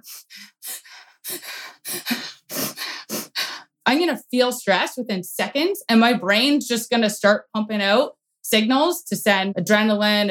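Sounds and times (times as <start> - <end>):
speech: 0.0 - 2.1, 3.9 - 10.2
person breathing heavily with deep airy breaths: 0.0 - 3.7.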